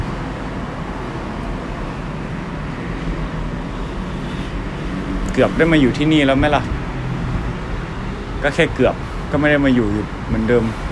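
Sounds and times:
outdoor road traffic rumble: 0.0 - 10.9
wind: 0.0 - 10.9
speech: 5.4 - 6.8, 8.4 - 10.9.

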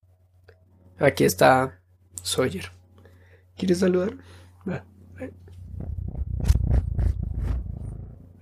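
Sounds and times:
speech: 1.0 - 2.8, 3.6 - 5.4
cat purring: 5.6 - 8.3.

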